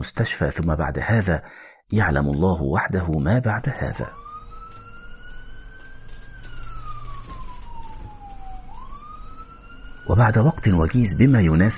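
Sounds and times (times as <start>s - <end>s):
speech: 0.0s - 4.2s, 10.1s - 11.7s
ambulance siren wailing at night: 3.0s - 11.7s.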